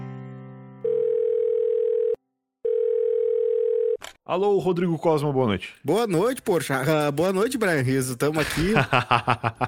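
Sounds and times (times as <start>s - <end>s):
telephone line hum on an outgoing call: 0.9s - 4.0s
speech: 4.3s - 9.6s
laughter: 8.3s - 9.6s.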